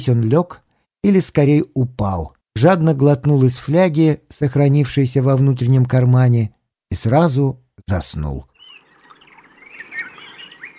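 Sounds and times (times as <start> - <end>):
speech: 0.0 - 8.5
birds singing in trees: 8.5 - 10.7.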